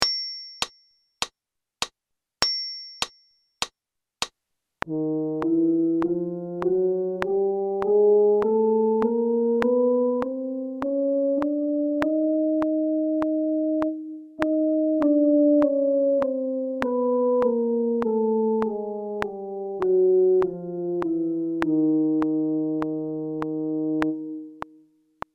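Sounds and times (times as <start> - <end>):
count-in: 4.8 - 25.3
brass playing chromatic scale in F for practice: 4.9 - 24.6.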